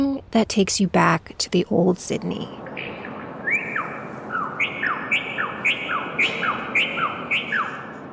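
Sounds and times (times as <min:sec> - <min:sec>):
soft hiss: 0:00.0 - 0:04.3
speech: 0:00.2 - 0:02.6
bird song from sound sculpture: 0:02.6 - 0:08.1.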